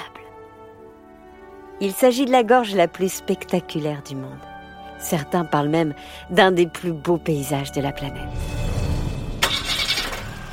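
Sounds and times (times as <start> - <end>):
speech: 1.8 - 8.6
camper van engine starting: 9.2 - 10.5.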